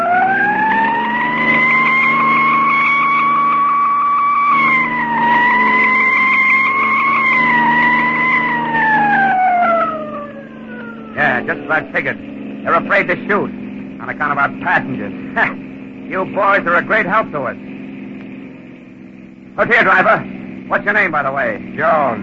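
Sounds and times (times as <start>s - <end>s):
rumble of a fast-moving vehicle: 0.0s - 22.2s
siren wailing on speeding vehicle: 0.0s - 22.2s
speech: 11.7s - 17.7s, 19.6s - 22.2s.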